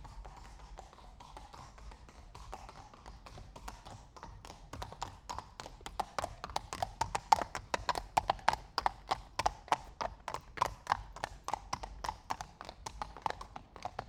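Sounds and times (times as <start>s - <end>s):
two horses walking slowly on cobblestones: 0.0s - 14.0s.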